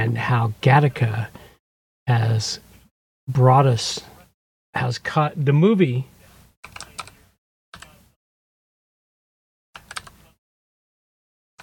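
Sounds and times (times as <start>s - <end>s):
speech: 0.1s - 1.5s, 2.1s - 2.7s, 3.3s - 4.1s, 4.7s - 6.1s
clicky computer keyboard typing into a search: 6.6s - 7.2s, 9.8s - 10.2s.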